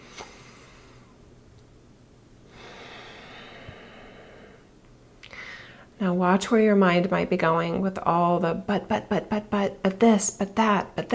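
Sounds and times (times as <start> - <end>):
slow deep breath: 0.0 - 1.2, 2.5 - 4.7, 5.3 - 5.9
speech: 6.0 - 11.1.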